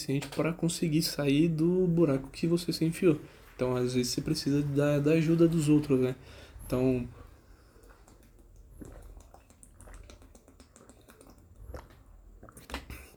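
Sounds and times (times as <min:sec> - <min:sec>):
speech: 0:00.0 - 0:07.2
low hum: 0:00.0 - 0:13.1
person sipping water with slurps and swallows: 0:06.2 - 0:13.1.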